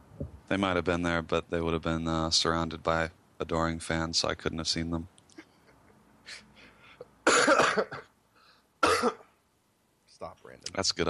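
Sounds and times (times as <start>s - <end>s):
speech: 0.5s - 5.2s, 7.8s - 8.0s, 10.6s - 11.0s
person coughing harshly: 7.2s - 8.1s, 8.8s - 9.3s.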